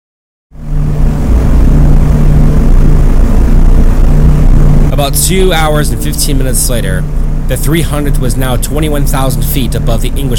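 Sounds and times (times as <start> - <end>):
propeller airplane engines roaring before takeoff: 0.5 - 10.3
speech: 5.0 - 10.3.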